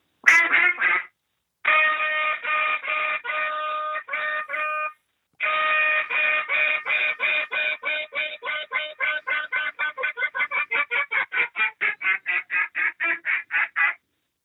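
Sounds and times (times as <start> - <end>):
duck call blown in a contest routine: 0.2 - 14.0.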